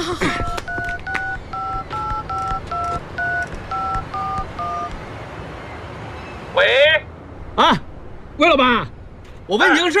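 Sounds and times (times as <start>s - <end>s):
telephone keypad tones dialing a gold jewelry shop: 0.3s - 5.0s
speech: 8.4s - 8.9s, 9.5s - 9.9s.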